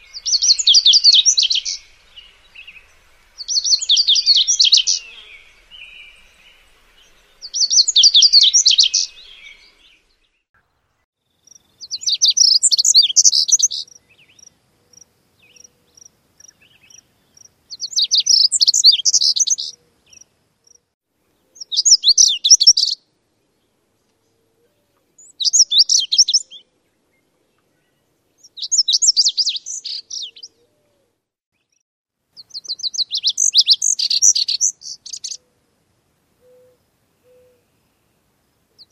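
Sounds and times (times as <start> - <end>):
warbler singing with buzzy ending notes: 0.0 - 10.5, 11.5 - 20.3, 21.5 - 23.0, 25.2 - 30.6, 32.4 - 35.4, 38.8 - 38.9.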